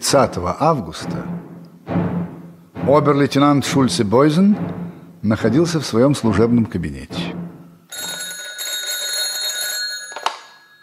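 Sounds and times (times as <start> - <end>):
speech: 0.1 - 1.5, 2.9 - 7.4
telephone bell ringing in an office: 7.9 - 10.8.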